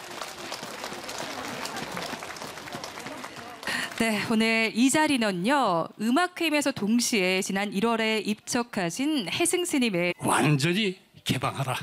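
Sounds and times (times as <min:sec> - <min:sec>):
audience applauding a choir at a spring flower concert at a Buddhist temple in Korea: 0:00.0 - 0:04.4
speech: 0:04.0 - 0:11.8.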